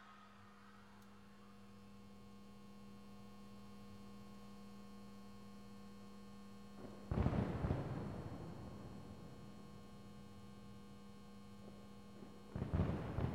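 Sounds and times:
steady low electrical hum: 0.0s - 13.3s
fireworks sizzling and crackling in the sky: 6.8s - 9.9s, 12.1s - 13.3s.

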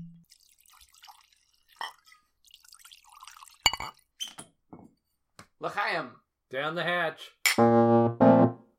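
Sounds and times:
scotch trickling and splashing into a glass: 0.2s - 4.1s
sharp glassy clinks: 3.7s - 4.0s
speech: 5.6s - 8.3s.

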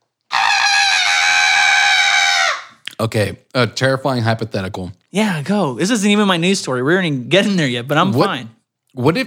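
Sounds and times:
voice imitating a falling stork's scream: 0.3s - 2.8s
speech: 3.0s - 9.2s.

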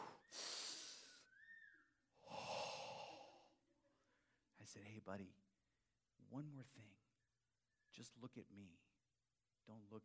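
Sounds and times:
voice imitating heavy nervous breathing: 0.0s - 1.3s, 2.2s - 3.6s
faint whistly tone: 0.0s - 2.6s, 7.6s - 8.2s
speech: 4.6s - 5.4s, 6.2s - 7.0s, 7.9s - 8.9s, 9.6s - 10.0s.

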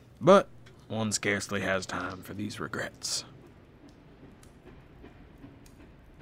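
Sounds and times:
speech: 0.2s - 3.3s
clickety-clack of train wheels over track joints: 1.8s - 6.2s
train rumbling along the rails: 1.8s - 6.2s.

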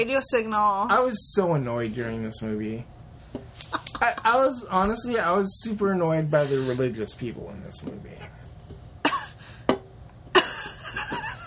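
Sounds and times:
speech: 0.0s - 8.4s
person coughing: 9.0s - 9.4s.

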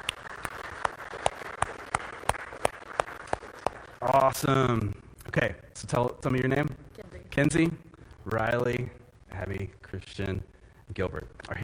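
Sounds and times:
audience clapping in a regular beat: 0.0s - 4.7s
speech: 4.0s - 6.8s, 7.4s - 11.6s.

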